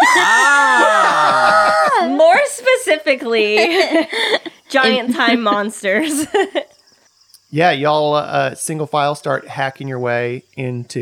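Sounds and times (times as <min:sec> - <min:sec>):
person screaming: 0:00.0 - 0:02.2
laughter: 0:00.0 - 0:02.8, 0:03.4 - 0:06.7
speech: 0:03.0 - 0:06.8, 0:07.5 - 0:10.9.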